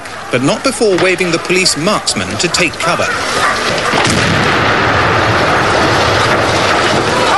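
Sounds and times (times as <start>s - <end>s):
speech: 0.3s - 4.5s
short-fuse demolition charge explosion: 3.8s - 7.3s.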